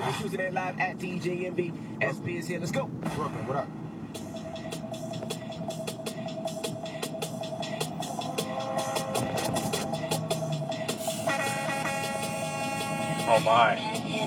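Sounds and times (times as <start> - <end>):
speech: 0.2 - 4.2, 13.3 - 14.0
thumping busy backdrop of sharp repeated hits: 2.3 - 14.2
second higher horn tone: 8.1 - 14.0
truck horn blasts used by a radio DJ as an air horn: 8.2 - 10.2, 10.9 - 14.0.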